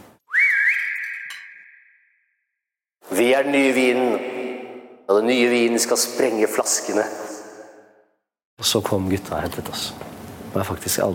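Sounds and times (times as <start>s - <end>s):
loud piercing whistle to get attention: 0.2s - 2.6s
speech: 3.2s - 4.3s, 5.1s - 7.4s, 8.6s - 11.1s.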